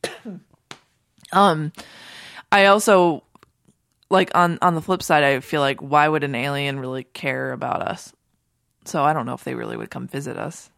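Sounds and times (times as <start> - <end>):
coughing: 0.0 - 0.6
speech: 0.2 - 0.5, 1.3 - 1.9, 2.5 - 3.2, 4.1 - 8.2, 8.8 - 10.7.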